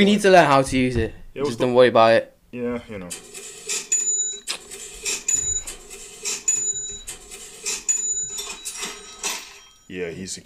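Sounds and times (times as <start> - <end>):
speech: 0.0 - 3.4, 9.9 - 10.4
cash register drawer mechanics clattering: 3.2 - 9.8
cash register metallic bell dings: 3.7 - 10.2.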